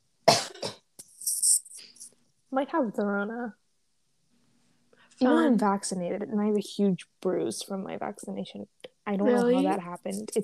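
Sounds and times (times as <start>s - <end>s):
harsh coughs: 0.3s - 0.8s
speech: 2.5s - 3.6s, 5.2s - 10.4s.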